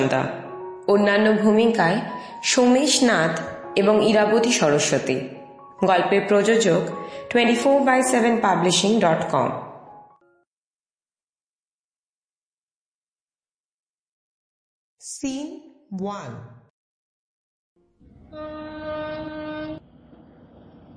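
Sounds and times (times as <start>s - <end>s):
speech: 0.0s - 9.7s, 15.2s - 16.6s
train horn or whistle blast: 18.3s - 19.9s.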